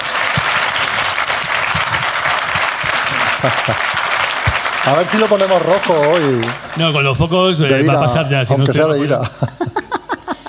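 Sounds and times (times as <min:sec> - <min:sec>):
audience applauding: 0:00.0 - 0:07.2
laughter: 0:02.8 - 0:05.4, 0:07.7 - 0:10.4
speech: 0:03.4 - 0:04.0, 0:04.8 - 0:09.8.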